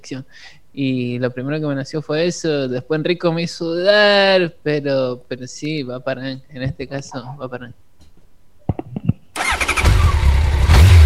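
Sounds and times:
speech: 0.0s - 7.8s
motorcycle engine starting and pulling away: 9.4s - 11.0s.

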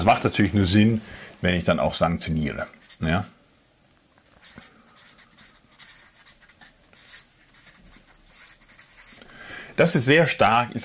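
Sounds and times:
speech: 0.0s - 3.4s, 9.8s - 10.8s
writing strokes scratching on a board: 2.8s - 3.0s, 4.4s - 9.2s.

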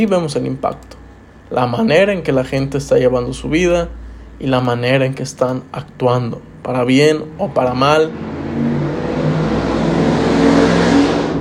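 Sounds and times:
speech: 0.0s - 8.7s
car passing by with road noise: 7.4s - 11.3s.

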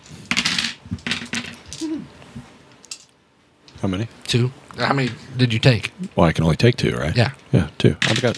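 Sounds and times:
dice clattering across a hard tabletop: 0.0s - 1.9s, 2.7s - 3.8s, 8.0s - 8.3s
speech: 3.8s - 8.3s.

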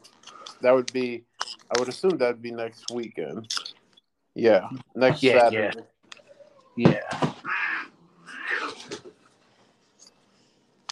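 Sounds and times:
speech: 0.6s - 3.6s, 4.4s - 5.9s, 6.8s - 7.3s
cat yowling meows: 7.4s - 8.9s.

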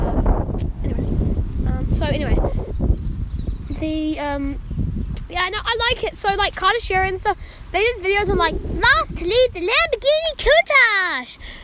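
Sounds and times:
wind buffeting the microphone: 0.0s - 11.6s
speech: 3.8s - 4.6s, 5.3s - 11.6s.

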